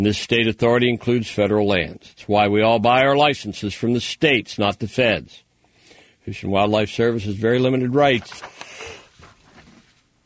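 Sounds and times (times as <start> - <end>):
speech: 0.0 - 5.4, 6.3 - 9.0
sharp intake of breath: 5.7 - 6.3, 8.5 - 9.2.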